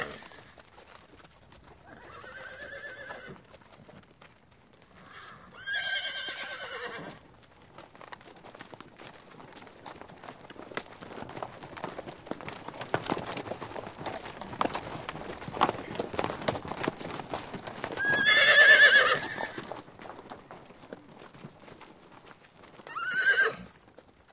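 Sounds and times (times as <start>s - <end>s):
horse clip-clopping hoofbeats: 0.0s - 24.3s
horse neighing: 1.9s - 3.4s, 5.0s - 7.2s, 18.0s - 19.6s, 22.9s - 23.9s.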